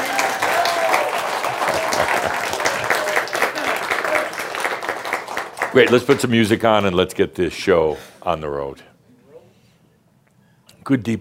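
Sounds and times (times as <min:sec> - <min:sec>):
crowd applauding: 0:00.0 - 0:06.4
laughter: 0:01.2 - 0:04.4
speech: 0:05.8 - 0:08.9, 0:10.9 - 0:11.1.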